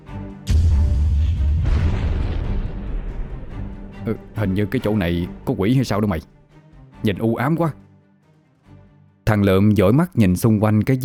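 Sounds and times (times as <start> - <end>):
explosion blast in a shaking cave: 0.5 - 4.6
heavy low rumble of a shaking cave: 0.5 - 6.0
speech: 4.1 - 6.4, 7.0 - 7.8, 9.3 - 11.0.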